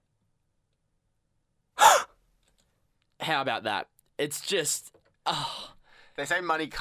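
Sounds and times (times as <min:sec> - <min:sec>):
sharp gasp: 0:01.8 - 0:02.1
speech: 0:03.2 - 0:06.7.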